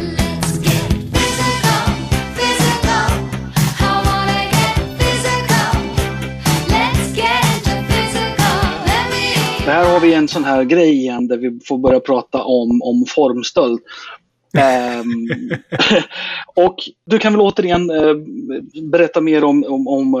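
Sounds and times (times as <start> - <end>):
upbeat 1980s pop song with thumping beat, bright synths and sung vocals: 0.0 - 10.5, 14.6 - 15.9
speech: 10.0 - 20.1
laughter: 14.6 - 16.4.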